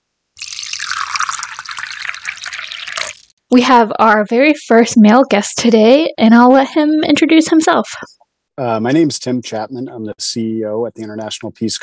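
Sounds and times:
tea pouring into a cup: 0.4s - 3.3s
speech: 3.5s - 11.8s.

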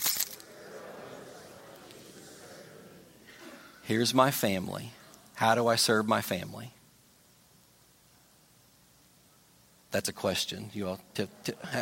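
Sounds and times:
keys rattling: 0.0s - 0.4s
faint low hum: 0.0s - 11.8s
laughter: 0.2s - 4.2s, 11.2s - 11.8s
speech: 3.9s - 6.8s, 9.9s - 11.8s.

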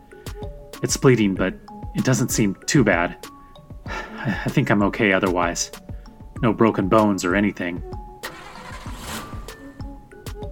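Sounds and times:
speech: 0.8s - 3.3s, 4.2s - 5.8s, 6.4s - 8.0s
car engine cranking but failing to start: 8.2s - 10.2s.

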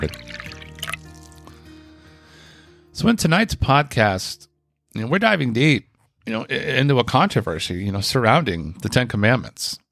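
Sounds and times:
speech: 0.0s - 0.4s, 3.0s - 9.8s
bartender pouring a drink into a glass: 0.0s - 1.6s, 8.7s - 9.2s.

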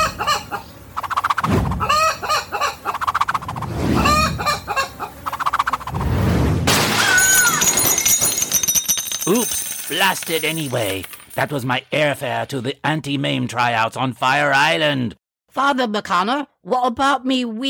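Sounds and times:
chicken squawking and clucking frantically: 0.0s - 6.1s
contribution plate crashing to floor: 6.7s - 8.7s
speech: 10.0s - 17.6s.

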